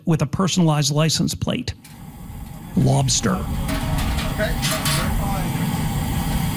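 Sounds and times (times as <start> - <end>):
speech: 0.1 - 2.0, 2.8 - 5.1
propane burners roaring under a big open-air roof outside a kitchen: 1.8 - 6.5.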